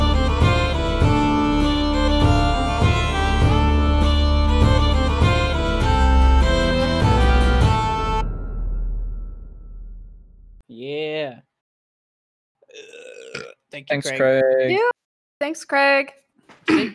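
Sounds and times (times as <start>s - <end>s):
music: 0.0s - 10.6s
loud deep gurgling burp into the microphone: 12.7s - 13.6s
speech: 13.8s - 16.9s.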